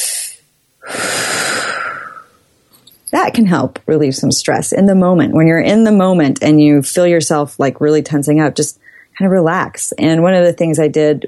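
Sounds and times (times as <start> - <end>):
deep breath in: 0.0 - 2.4, 8.8 - 9.2
longer airy exhale: 0.0 - 2.4
speech: 3.2 - 11.2.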